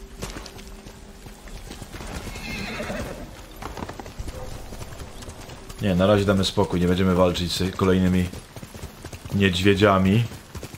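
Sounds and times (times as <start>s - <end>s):
horse galloping in a video game: 0.0s - 10.7s
horse neighing in a video game: 2.2s - 3.4s
speech: 5.8s - 8.5s, 9.3s - 10.4s.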